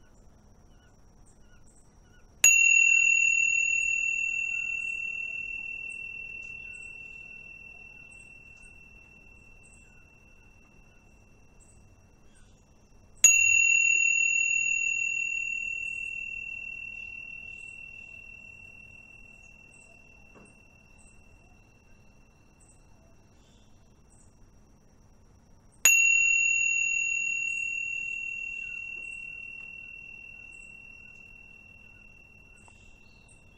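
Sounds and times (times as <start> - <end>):
bell struck and ringing: 2.4 - 9.8, 13.3 - 21.4, 25.9 - 33.0.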